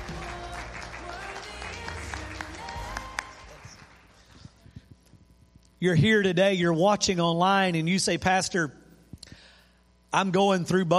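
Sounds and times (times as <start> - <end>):
crowd clapping and cheering in a large room: 0.0 - 4.7
speech: 5.8 - 8.8, 10.1 - 10.9.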